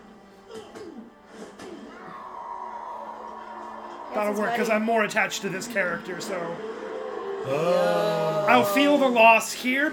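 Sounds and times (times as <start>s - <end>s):
speech: 4.2s - 6.8s, 7.4s - 9.9s
strained vocal cries in a movie scene: 7.4s - 9.1s.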